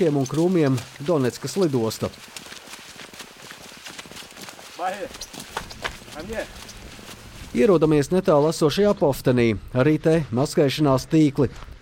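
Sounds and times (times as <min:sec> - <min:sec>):
speech: 0:00.0 - 0:02.4, 0:04.8 - 0:05.5, 0:06.2 - 0:06.7, 0:07.5 - 0:11.8
quick footsteps crunching on rough ground across an open field near Donetsk airport Ukraine: 0:00.0 - 0:08.9.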